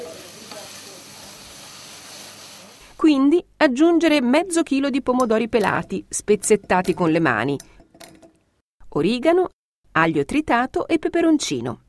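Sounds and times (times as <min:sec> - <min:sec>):
red wine sizzling and evaporating in a hot pan with browned meat and soffritto: 0:00.0 - 0:03.0
speech: 0:03.0 - 0:07.8, 0:08.9 - 0:11.8.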